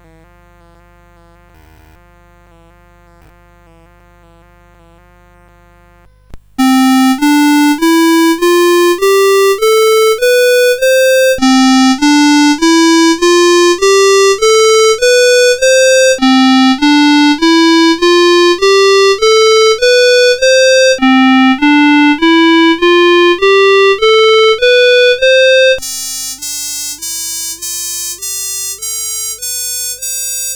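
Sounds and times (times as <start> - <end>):
synthesizer filter mode demonstration: 6.6 - 26.4.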